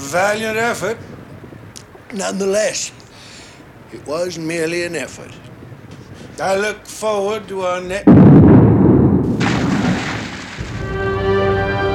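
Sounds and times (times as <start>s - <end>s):
speech: 0.1s - 1.2s, 2.1s - 3.0s, 3.9s - 5.5s, 6.4s - 8.2s
big explosion with deep rumbling roar: 8.0s - 11.8s.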